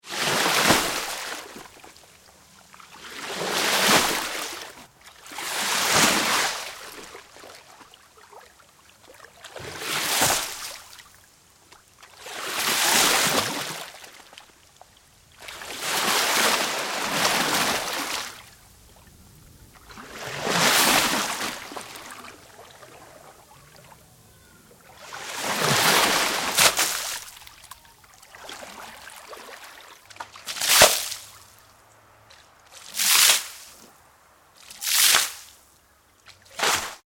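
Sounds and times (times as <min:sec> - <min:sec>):
various water movements: 0:00.2 - 0:34.0.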